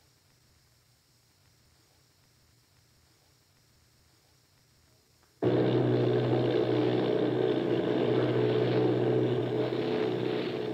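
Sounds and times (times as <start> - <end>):
bomber plane propeller engines droning overhead: 5.4 - 10.7.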